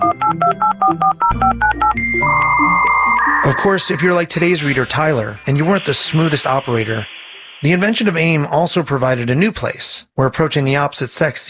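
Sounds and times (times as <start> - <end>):
touch-tone telephone dialing beeps: 0.0 - 3.9
dial-up modem connection tone: 0.0 - 8.4
low hum: 2.4 - 8.9
speech: 3.5 - 11.4.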